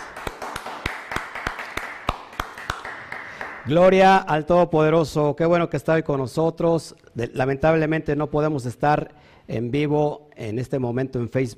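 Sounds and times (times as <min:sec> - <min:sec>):
audience applause at a Shabbat gathering: 0:00.0 - 0:03.7
speech: 0:03.6 - 0:11.5.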